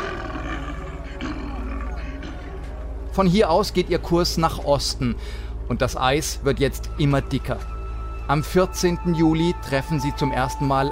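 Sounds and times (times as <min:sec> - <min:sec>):
polar bear roaring in a deep rumbling growl: 0:00.0 - 0:02.6
speech: 0:03.2 - 0:07.7, 0:08.3 - 0:10.9.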